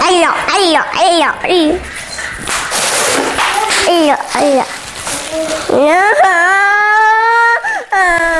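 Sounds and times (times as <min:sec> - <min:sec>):
speech: 0:00.1 - 0:02.0, 0:03.9 - 0:04.7, 0:05.3 - 0:06.7
child whimpering and crying: 0:03.5 - 0:08.3.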